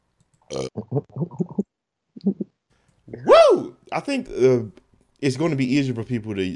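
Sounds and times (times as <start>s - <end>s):
deep croaky burp: 0.5s - 1.2s
speech: 0.5s - 2.4s, 3.9s - 6.5s.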